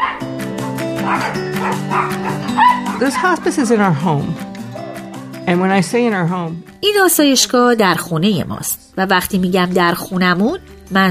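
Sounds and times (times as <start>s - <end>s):
dog barking: 0.0s - 3.7s, 4.7s - 5.1s
speech: 1.1s - 4.5s, 5.5s - 11.1s.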